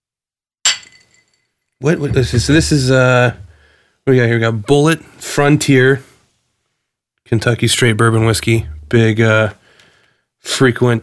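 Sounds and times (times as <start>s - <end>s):
glasses clinking in a bourbon toast: 0.7s - 1.4s
speech: 1.8s - 3.4s, 4.0s - 6.1s, 7.3s - 9.6s, 10.4s - 11.0s.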